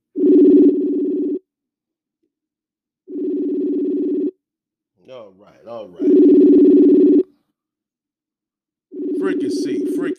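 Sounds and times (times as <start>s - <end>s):
telephone ringing tones on an outgoing call: 0.2s - 1.4s, 3.1s - 4.4s, 6.0s - 7.2s, 8.9s - 10.1s.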